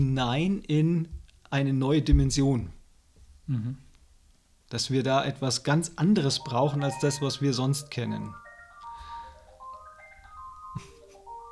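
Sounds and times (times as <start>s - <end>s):
speech: 0.0s - 2.8s, 3.5s - 3.8s, 4.7s - 8.4s
brief low thump: 2.1s - 2.5s
phone ringing with a melodic electronic ringtone: 6.0s - 11.5s.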